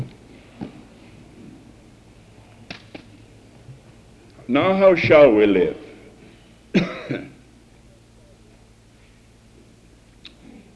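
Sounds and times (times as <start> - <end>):
speech: 4.5 - 5.8
faint throat clearing: 6.7 - 7.4
person coughing harshly: 6.7 - 7.4.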